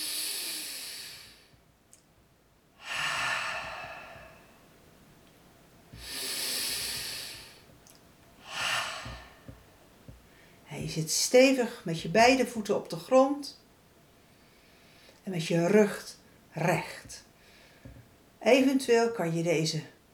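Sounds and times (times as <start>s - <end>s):
deep breathing in through the nose and out through the mouth during a guided relaxation exercise: 0.0s - 1.6s, 2.8s - 4.7s, 5.9s - 7.8s, 8.4s - 10.6s, 17.3s - 18.2s
speech: 10.9s - 13.6s, 15.3s - 17.3s, 18.4s - 19.9s.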